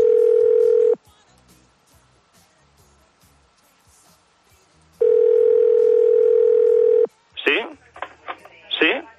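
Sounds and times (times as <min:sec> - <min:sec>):
person answering the call: 0:00.0 - 0:01.0, 0:05.0 - 0:07.7
telephone ring tone heard through the line: 0:00.0 - 0:01.0, 0:05.0 - 0:07.1.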